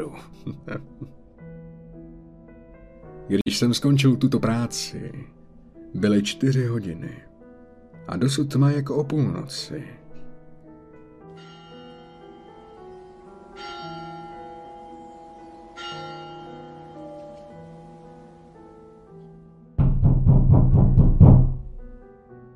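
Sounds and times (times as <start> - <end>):
speech: 0.0 - 1.1, 3.3 - 7.3, 8.0 - 10.0
laughter: 0.4 - 1.1
deep bell tolling the hour: 11.4 - 18.5
loud rapid knocking on a house's front door: 19.8 - 21.9.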